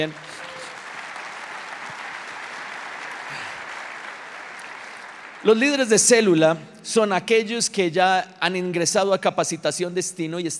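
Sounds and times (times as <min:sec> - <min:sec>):
speech: 0:00.0 - 0:00.2, 0:05.4 - 0:10.5
applause from a large audience: 0:00.0 - 0:06.2.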